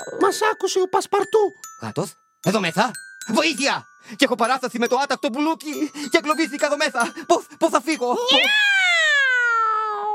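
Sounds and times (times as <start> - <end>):
speech: 0.1 - 9.1
cat meowing: 8.3 - 10.1.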